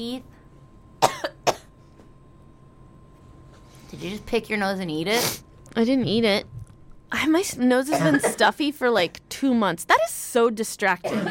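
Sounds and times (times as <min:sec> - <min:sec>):
speech: 0:00.0 - 0:00.4, 0:03.9 - 0:11.2
person coughing: 0:01.0 - 0:01.7, 0:07.9 - 0:08.5, 0:11.0 - 0:11.2.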